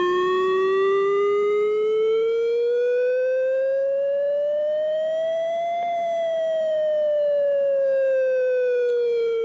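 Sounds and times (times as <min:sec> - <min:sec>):
chemical emergency warning siren wailing: 0:00.0 - 0:09.4.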